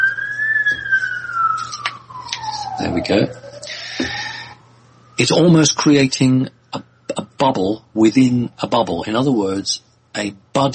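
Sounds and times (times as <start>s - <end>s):
ambulance siren passing by: 0.0s - 8.8s
low steady hum: 0.0s - 10.7s
speech: 2.8s - 3.4s, 5.2s - 10.7s.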